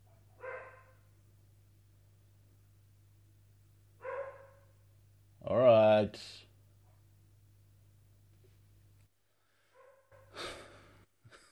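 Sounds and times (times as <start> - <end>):
dog barking at dogs walking past: 0.0 - 1.1, 4.0 - 4.8, 9.7 - 10.3
speech: 5.5 - 6.4.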